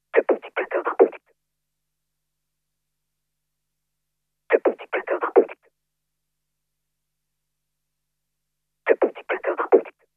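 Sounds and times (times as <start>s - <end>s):
person beatboxing: 0.2s - 1.2s, 4.5s - 5.6s, 8.9s - 10.0s.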